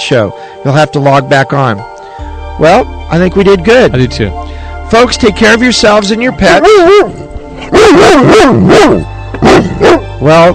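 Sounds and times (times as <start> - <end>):
speech: 0.1 - 1.9, 2.6 - 10.5
dog barking: 6.7 - 10.0.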